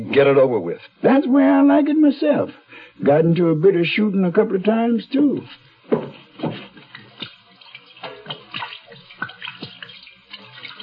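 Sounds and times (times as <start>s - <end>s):
speech: 0.1s - 6.6s
gin splashing as hands are washed: 6.4s - 10.8s.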